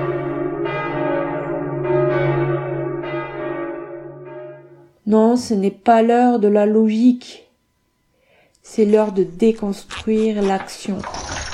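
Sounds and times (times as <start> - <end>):
church bells ringing: 0.0 - 4.9
speech: 5.1 - 7.4, 8.6 - 11.3.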